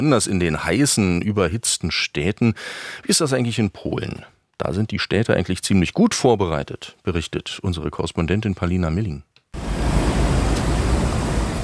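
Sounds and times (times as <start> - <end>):
speech: 0.0 - 9.3
low outdoor rumble: 9.6 - 11.6
water sprinkler spraying fine mist: 9.6 - 11.6.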